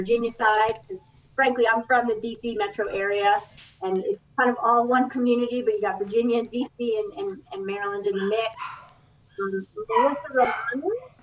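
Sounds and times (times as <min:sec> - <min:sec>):
speech: 0:00.0 - 0:08.8, 0:09.4 - 0:11.1
low steady hum: 0:00.0 - 0:11.2
dog giving short high yelping barks and whines: 0:08.0 - 0:11.2.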